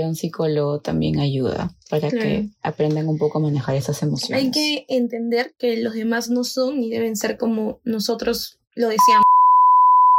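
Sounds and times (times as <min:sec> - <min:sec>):
speech: 0:00.0 - 0:09.4
high-pitched electronic censor bleep tone: 0:09.0 - 0:10.1.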